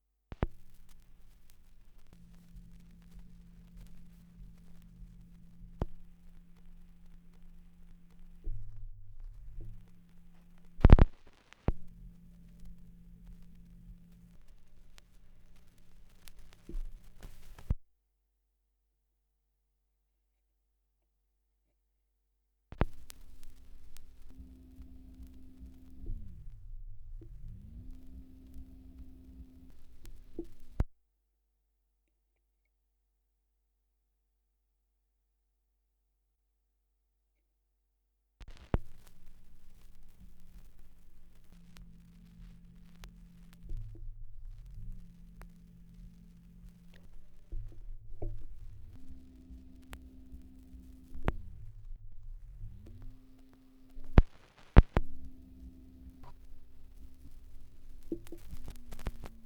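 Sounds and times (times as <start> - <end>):
78rpm record surface noise: 0.3 - 17.8, 22.7 - 30.9, 38.4 - 59.4.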